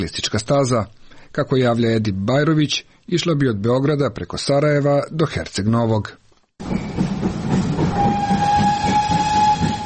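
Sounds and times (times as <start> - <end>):
speech: 0.0 - 7.1
narrow-gauge steam locomotive and train clattering with rhythmic wheel beat: 6.6 - 9.8
narrow-gauge steam locomotive whistle: 7.6 - 9.8.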